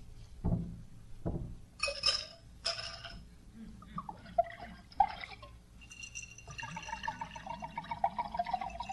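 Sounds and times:
dull knocks: 0.4 - 1.6
bright clinks of glass: 1.8 - 3.2, 4.3 - 8.9
scotch glugging as it is poured into a glass: 4.0 - 8.9.

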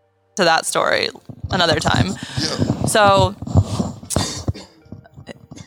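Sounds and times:
speech: 0.4 - 3.4
throat noises: 1.1 - 5.6
person coughing: 4.1 - 4.9.

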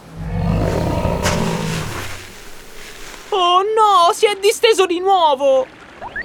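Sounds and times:
polar bear growling on a snow bridge: 0.0 - 3.4
speech: 4.1 - 5.8.

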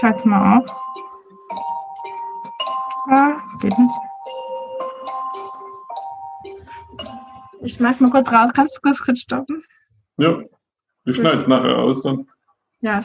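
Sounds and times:
speech: 0.0 - 1.1, 3.1 - 4.1, 7.6 - 10.5, 11.1 - 13.0
mobile phone ringtone playing an electronic melody: 0.0 - 8.4.

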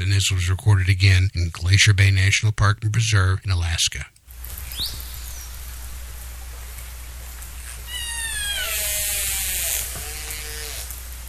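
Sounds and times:
speech: 0.0 - 4.2, 4.8 - 5.0
steady hissing underwater background: 4.4 - 11.2
killer whale calling underwater: 7.7 - 11.0.

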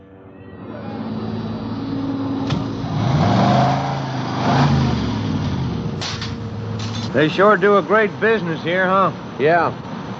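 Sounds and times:
car engines running at a service station car wash: 0.0 - 10.1
speech: 7.2 - 9.8.

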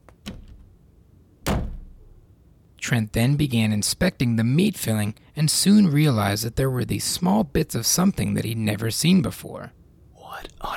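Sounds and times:
bedroom door slamming shut: 0.2 - 0.7, 1.4 - 2.2
speech: 2.9 - 9.8.

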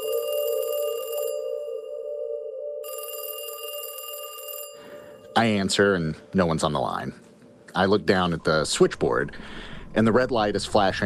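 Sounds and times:
telephone ringing with electronic trill in a soundproofed building: 0.0 - 5.7
speech: 5.4 - 11.0.

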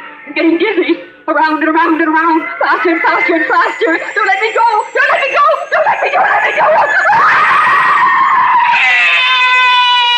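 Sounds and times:
speech: 0.3 - 7.8
laughter: 2.2 - 4.8
person screaming: 7.0 - 10.1.

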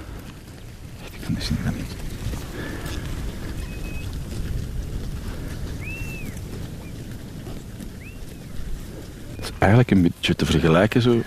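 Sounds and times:
animal nibbling and grazing on grass: 0.0 - 11.2
speech: 1.3 - 3.0, 9.6 - 11.2
faint bird chirps: 3.6 - 4.1, 5.7 - 7.0, 8.0 - 8.6.

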